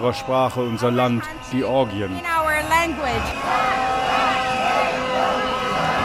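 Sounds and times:
speech: 0.0s - 3.8s
crowd of young people shouting and chanting at a peaceful protest in Georgia: 0.0s - 6.0s
crowd of young people singing held tonal notes at a protest in Georgia: 2.8s - 6.0s.

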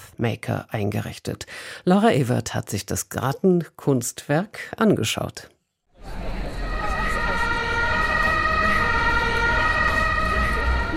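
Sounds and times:
speech: 0.2s - 6.3s
steady siren-like tone: 6.0s - 10.9s
traffic on a multi-lane road beside a city garden in Berlin: 6.2s - 10.9s.

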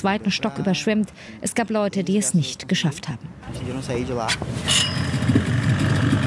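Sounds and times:
speech: 0.0s - 6.1s
motorboat engine droning: 4.5s - 6.2s.

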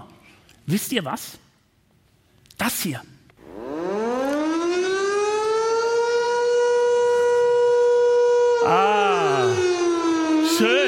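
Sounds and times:
speech: 0.7s - 1.4s, 2.6s - 3.2s, 8.6s - 9.0s, 10.6s - 10.8s
civil defense siren in Switzerland wailing in federal siren test: 3.4s - 10.8s.

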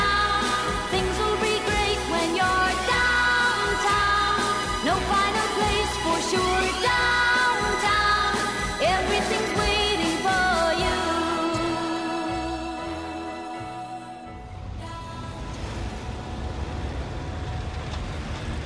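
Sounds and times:
musical passage: 0.0s - 18.6s
dense city traffic at a large intersection in Berlin: 14.4s - 18.6s.

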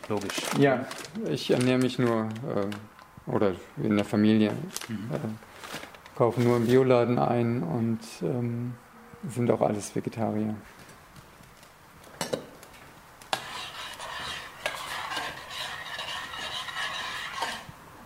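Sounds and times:
speech: 0.1s - 10.8s
spoon stirring and scraping in a pot: 13.3s - 17.8s.

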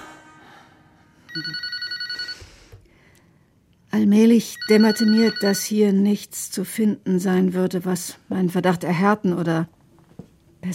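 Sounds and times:
speech: 1.3s - 1.8s, 4.0s - 9.8s
telephone bell ringing in a trilling burst: 1.3s - 2.6s, 4.5s - 5.7s.

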